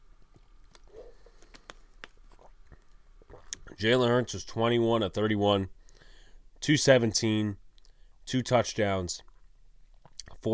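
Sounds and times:
faint mouth smacks: 0.7 - 3.8, 9.3 - 10.4
person sipping a drink with soft slurping: 0.7 - 3.8
person gulping a drink: 2.2 - 3.8
speech: 3.7 - 5.8, 6.6 - 7.6, 8.3 - 9.3.

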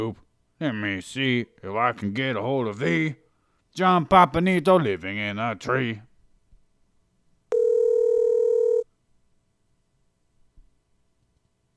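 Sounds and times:
speech: 0.0 - 3.2, 3.8 - 6.1
telephone dial tone: 7.5 - 8.9.

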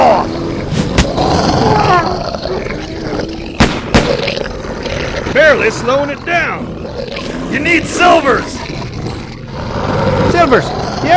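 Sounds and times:
werewolf deep growling roar: 0.0 - 11.1
sharp gunshot-like bangs: 3.6 - 4.3
speech: 5.6 - 6.8, 7.5 - 8.6, 10.4 - 11.1.

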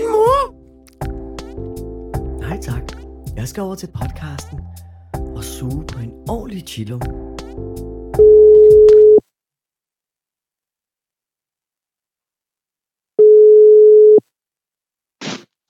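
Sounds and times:
speech: 2.6 - 4.8, 5.4 - 7.8
electronic ringback tone on an outgoing phone call: 8.2 - 9.2, 13.2 - 14.2.

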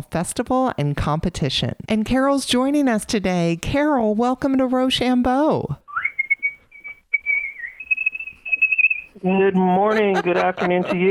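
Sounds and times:
speech: 0.0 - 5.8, 9.2 - 11.1
champion whistler whistling a bright melodic tune with trills: 5.9 - 9.1
laughter: 9.3 - 11.1.

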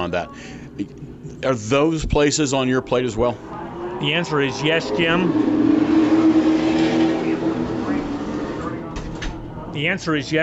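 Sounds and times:
speech: 0.0 - 5.8, 9.8 - 10.4
race cars roaring around a racetrack: 0.0 - 10.4
race car passing: 2.5 - 10.1.

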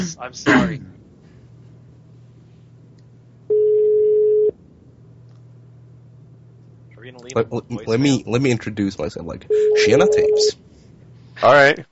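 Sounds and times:
speech: 0.0 - 1.0, 7.2 - 10.7, 11.4 - 11.9
faint low hum: 0.0 - 11.9
outgoing telephone call ringback tone: 3.5 - 4.5, 9.5 - 10.5.

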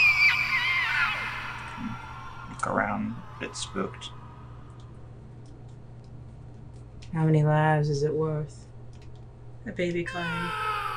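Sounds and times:
children screaming high-pitched: 0.0 - 4.7, 10.1 - 10.9
low steady hum: 0.0 - 10.9
speech: 2.7 - 4.2, 7.1 - 8.6, 9.6 - 10.7.

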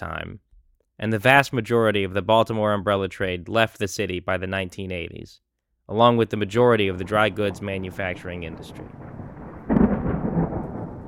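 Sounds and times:
speech: 0.0 - 9.2
thunder rumbling: 6.6 - 11.0
rain: 7.0 - 11.0.

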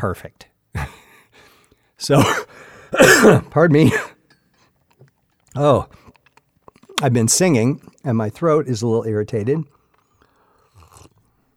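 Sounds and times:
speech: 0.0 - 1.0, 2.0 - 4.1, 5.6 - 6.0, 7.0 - 9.8
slurping hot tea: 10.0 - 11.3
swallow: 10.0 - 11.3.

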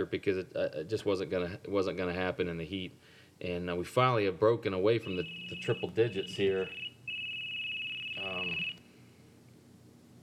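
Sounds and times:
speech: 0.0 - 6.9
phone ringing with a high electronic tone: 5.0 - 8.8.

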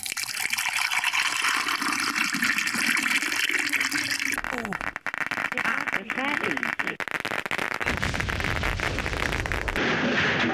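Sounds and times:
hot water pouring into a soup cup with soup powder and croutons: 0.0 - 5.2
bubbling and popping crackles from croutons: 0.0 - 10.4.

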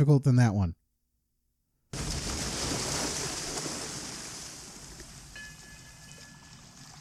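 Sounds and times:
speech: 0.0 - 0.8
ship crashing in the Hudson River with a loud roaring impact: 2.0 - 6.7.

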